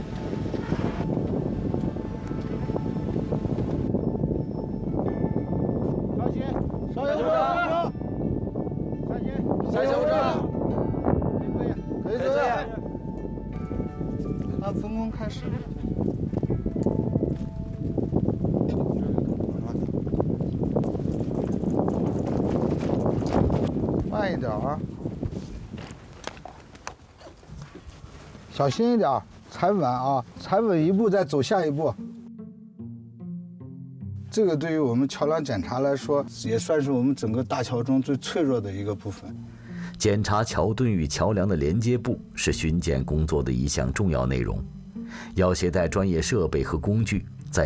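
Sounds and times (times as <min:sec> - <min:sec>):
wind roaring and buffeting the microphone: 0:00.0 - 0:28.6
speech: 0:28.6 - 0:32.0, 0:34.4 - 0:47.6.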